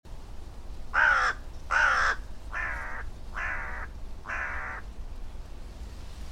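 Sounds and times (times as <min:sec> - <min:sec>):
Corvus corone cawing: 0:00.9 - 0:04.9.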